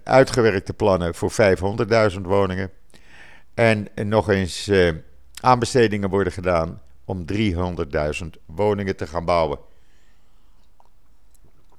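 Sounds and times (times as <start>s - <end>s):
quiet steady hiss: 0.0s - 11.7s
speech: 0.1s - 2.8s, 3.6s - 9.7s
person sipping water: 9.7s - 11.7s
soft wet mouth clicks: 10.6s - 11.7s.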